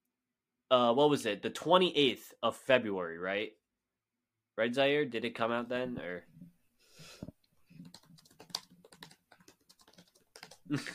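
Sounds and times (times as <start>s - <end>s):
speech: 0.7s - 3.6s, 4.6s - 6.5s, 10.7s - 10.9s
computer keyboard typing: 7.7s - 10.8s.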